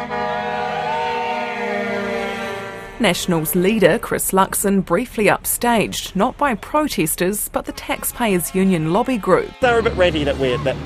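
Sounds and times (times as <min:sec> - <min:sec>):
car horns honking from passing vehicles on the waterfront in Petone, Wellington: 0:00.0 - 0:04.0, 0:07.5 - 0:10.8
speech: 0:03.0 - 0:10.8.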